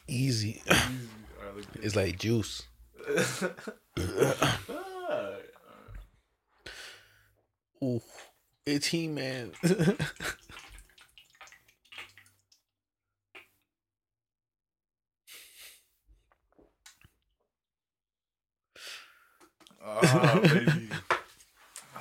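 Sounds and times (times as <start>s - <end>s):
speech: 0.1s - 4.8s, 7.8s - 10.4s
laughter: 3.0s - 5.5s, 9.6s - 10.4s, 19.8s - 21.2s
person wavering vocal exclamation: 4.1s - 5.6s, 19.8s - 21.0s
liquid poured out over a person's head: 9.3s - 12.6s.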